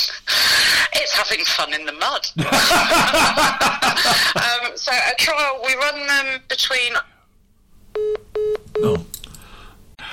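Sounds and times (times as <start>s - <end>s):
speech: 1.2s - 7.1s
laughter: 2.4s - 4.5s
short electronic phone beeps of a dropped call: 8.0s - 9.1s.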